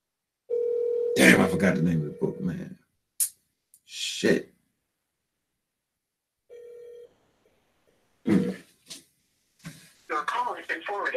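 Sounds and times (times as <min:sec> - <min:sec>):
short electronic phone ring: 0:00.5 - 0:02.4, 0:06.5 - 0:07.1
speech: 0:01.2 - 0:03.3, 0:04.2 - 0:04.5
person clearing throat: 0:08.3 - 0:08.6.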